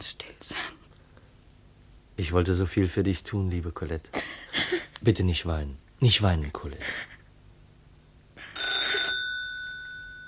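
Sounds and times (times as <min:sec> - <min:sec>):
speech: 0:00.0 - 0:00.8, 0:02.2 - 0:07.1
telephone ringing: 0:08.4 - 0:10.2.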